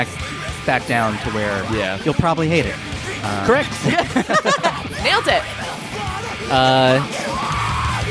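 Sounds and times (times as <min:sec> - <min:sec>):
speech: 0:00.0 - 0:05.6, 0:06.5 - 0:07.2
metal song: 0:00.0 - 0:08.0
laughter: 0:03.3 - 0:06.1
harsh screamed male vocal in a metal song: 0:05.6 - 0:08.0.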